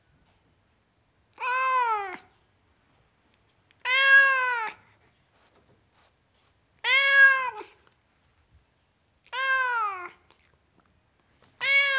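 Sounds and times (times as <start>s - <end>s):
tom cat meowing: 1.4s - 2.2s, 3.8s - 4.8s, 6.8s - 7.8s, 9.3s - 10.2s, 11.6s - 11.9s.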